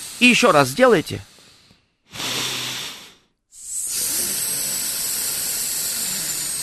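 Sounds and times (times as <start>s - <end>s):
speech: 0.2s - 1.3s
person inhaling during a vocal breathing exercise: 1.2s - 6.6s
long hissing exhale through the teeth during a vocal breathing exercise: 1.3s - 6.6s.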